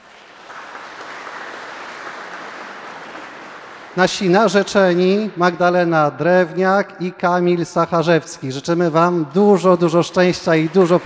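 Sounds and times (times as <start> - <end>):
audience applauding: 0.0 - 5.2, 9.6 - 11.0
speech: 4.0 - 11.0.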